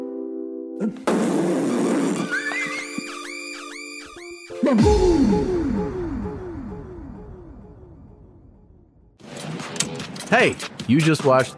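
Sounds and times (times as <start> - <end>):
speech: 0.8 - 2.3, 4.6 - 6.0, 10.3 - 11.5
loud drawn-out sputtering fart sound: 0.8 - 3.8
squeaky rising whistle-like chirps: 2.2 - 4.8
low buzzing drone: 4.8 - 8.8.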